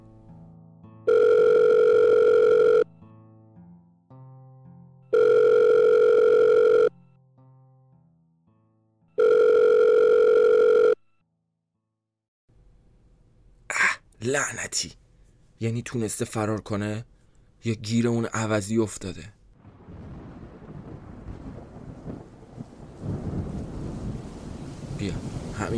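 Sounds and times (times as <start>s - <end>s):
mobile phone call ringback tone: 1.1s - 2.9s, 5.1s - 7.0s, 9.2s - 11.2s
speech: 14.4s - 15.0s, 15.6s - 19.4s.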